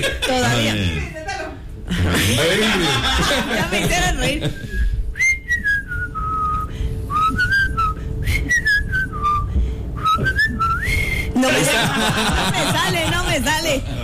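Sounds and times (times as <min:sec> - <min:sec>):
laughter: 0:00.0 - 0:00.7, 0:01.9 - 0:04.8, 0:11.4 - 0:14.0
speech: 0:00.0 - 0:01.2, 0:02.3 - 0:04.9, 0:11.4 - 0:14.0
person whistling a melodic phrase of sliding notes: 0:04.6 - 0:11.4.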